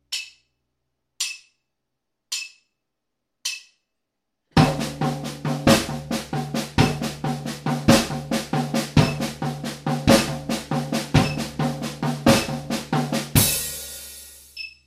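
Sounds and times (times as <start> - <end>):
small tom drum: 4.6 - 14.6.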